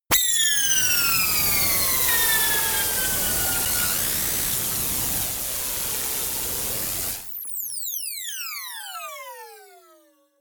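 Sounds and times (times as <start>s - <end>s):
jet noise: 0.6s - 7.3s.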